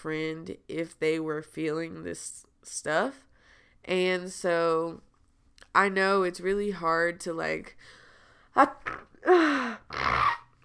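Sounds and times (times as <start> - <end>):
speech: 0.0 - 5.1, 5.8 - 8.0, 8.6 - 10.3
person sneezing: 8.8 - 10.5.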